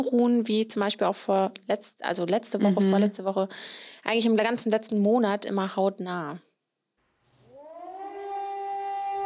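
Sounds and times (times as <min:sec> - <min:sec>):
speech: 0:00.0 - 0:06.5
civil defense air raid siren winding up and wailing: 0:07.5 - 0:09.2.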